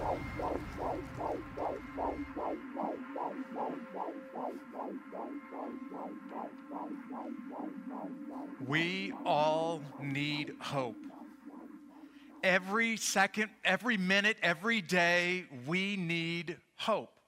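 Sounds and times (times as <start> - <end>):
low rumble: 0.0 - 12.7
heartbeat sound effect of soft throbs: 0.0 - 14.2
speech: 5.7 - 11.1, 12.4 - 17.2.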